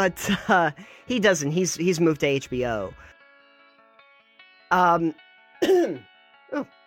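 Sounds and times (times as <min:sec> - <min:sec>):
speech: 0:00.0 - 0:03.2, 0:04.7 - 0:06.8
short raspy coughs: 0:05.6 - 0:06.0.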